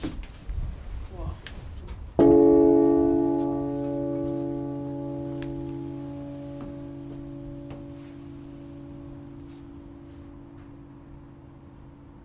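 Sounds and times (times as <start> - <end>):
faint room noise: 0.0 - 12.2
heavy strike of cathedral bell cast in 1311 with 170 kg clapper: 2.2 - 12.2.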